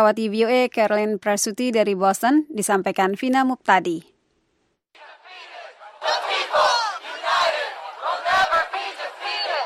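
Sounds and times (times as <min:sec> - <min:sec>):
speech: 0:00.0 - 0:04.1
large protest crowd chanting and shouting in unison: 0:05.0 - 0:09.6.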